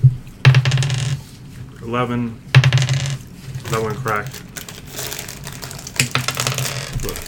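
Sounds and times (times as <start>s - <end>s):
dice rolling on a hard table surface: 0.4s - 1.3s, 2.6s - 7.2s
speech: 1.8s - 2.5s, 3.7s - 4.5s, 7.0s - 7.2s.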